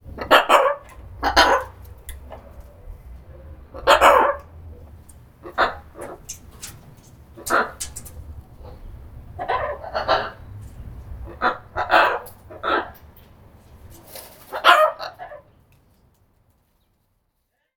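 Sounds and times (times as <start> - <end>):
macaw vocals: 0.0 - 13.0.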